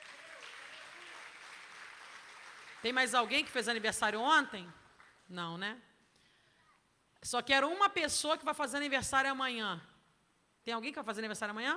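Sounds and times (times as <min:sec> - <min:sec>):
church congregation applauding: 0:00.0 - 0:04.2, 0:04.8 - 0:05.3
speech: 0:02.8 - 0:05.9, 0:07.2 - 0:09.9, 0:10.6 - 0:11.7.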